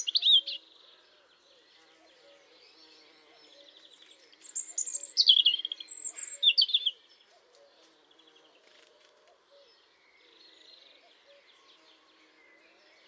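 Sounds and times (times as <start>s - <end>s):
European robin Erithacus rubecula singing: 0.0s - 0.8s, 3.6s - 7.1s.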